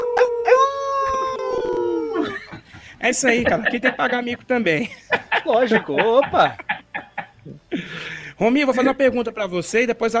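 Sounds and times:
four people imitating a wolf howl together: 0.0s - 2.4s
brief laugh-like break: 2.2s - 8.1s
speech: 3.0s - 6.7s, 8.4s - 10.1s.

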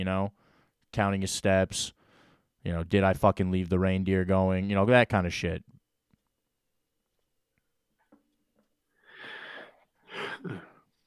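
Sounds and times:
speech: 0.0s - 2.0s, 2.6s - 5.7s, 10.2s - 10.7s
person yawning with a breathy strained inhale: 10.1s - 10.8s.

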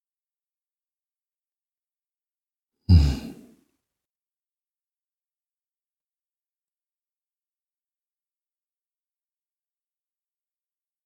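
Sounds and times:
deep breath in: 2.9s - 3.5s.

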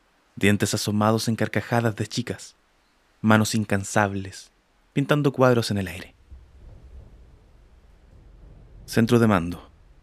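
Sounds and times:
faint hiss like rain: 0.0s - 10.0s
speech: 0.4s - 2.6s, 3.2s - 6.2s, 8.9s - 9.7s
low rumble of thunder: 5.8s - 10.0s.

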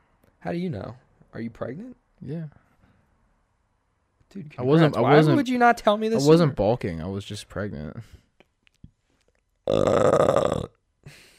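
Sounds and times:
speech: 0.4s - 2.6s, 4.3s - 8.2s, 9.7s - 11.2s
loud drawn-out burp into the microphone: 9.6s - 10.8s.

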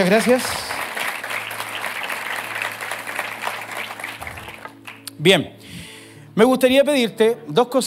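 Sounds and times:
speech: 0.0s - 0.8s, 5.2s - 5.6s, 6.4s - 7.8s
audience applauding in a large room: 0.0s - 5.2s.

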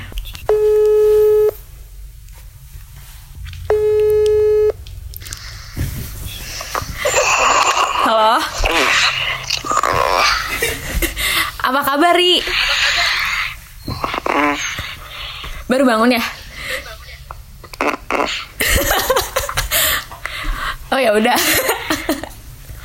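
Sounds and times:
noisy sound on a phone call: 0.0s - 22.8s
electronic phone ringback tones: 0.5s - 1.6s, 3.7s - 4.8s
speech: 11.8s - 12.8s, 15.8s - 16.4s
laughter: 12.3s - 13.6s, 18.6s - 20.0s.

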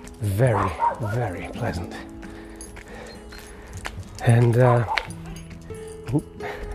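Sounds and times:
speech: 0.2s - 2.1s, 4.2s - 5.0s, 6.1s - 6.4s
dog barking and yipping during an uphill walk: 0.3s - 1.8s, 4.7s - 5.3s.

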